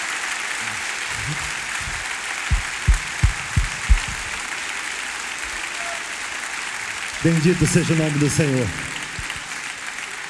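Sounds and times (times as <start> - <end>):
audience applauding: 0.0 - 10.2
speech: 0.6 - 1.6, 7.2 - 9.0
soft regular low thumps: 1.1 - 4.4.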